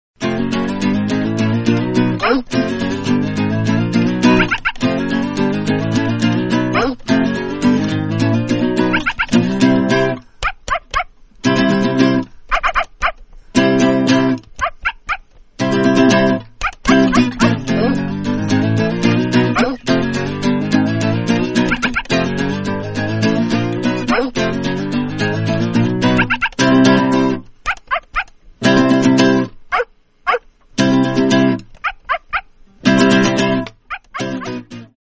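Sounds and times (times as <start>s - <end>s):
acoustic guitar music: 0.2s - 35.0s
animals: 4.2s - 4.9s, 6.7s - 7.0s, 8.8s - 9.4s, 10.4s - 11.1s, 12.5s - 13.2s, 14.6s - 15.3s, 21.6s - 22.3s, 24.0s - 24.4s, 26.0s - 26.6s, 27.6s - 28.3s, 29.7s - 30.5s, 31.8s - 32.5s, 33.9s - 34.7s.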